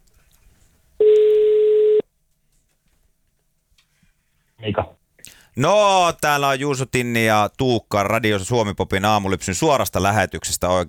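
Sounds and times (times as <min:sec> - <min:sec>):
telephone ringback tone of an outgoing phone call: 0:01.0 - 0:02.0
speech: 0:04.6 - 0:04.9, 0:05.6 - 0:10.8.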